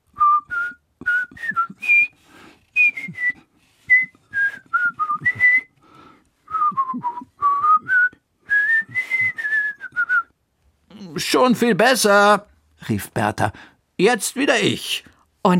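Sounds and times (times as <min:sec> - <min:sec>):
person whistling a melody slightly out of tune: 0:00.1 - 0:05.8, 0:06.5 - 0:10.3
breaths: 0:02.1 - 0:03.9, 0:05.7 - 0:06.5, 0:13.5 - 0:13.9, 0:15.0 - 0:15.4
speech: 0:11.4 - 0:15.5.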